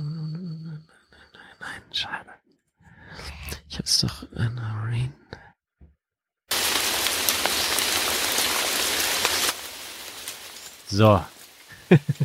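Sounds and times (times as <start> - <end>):
speech: 1.7 - 2.4, 3.2 - 5.4, 10.9 - 11.3, 11.9 - 12.2
rain falling: 6.5 - 12.2
laughter: 11.7 - 12.2.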